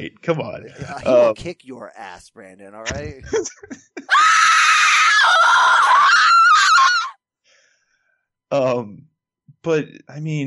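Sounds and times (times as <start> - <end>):
laughter: 0.0 - 4.2
speech: 0.0 - 4.4, 8.5 - 10.4
brief breathy sounds: 0.6 - 3.4
woman letting out a loud high-pitched shriek: 4.1 - 7.1.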